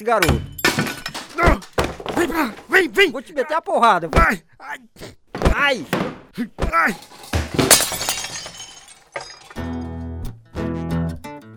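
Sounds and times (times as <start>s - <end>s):
speech: 0.0s - 0.5s, 2.2s - 8.0s
glass door shattering: 0.2s - 2.1s, 6.9s - 9.9s.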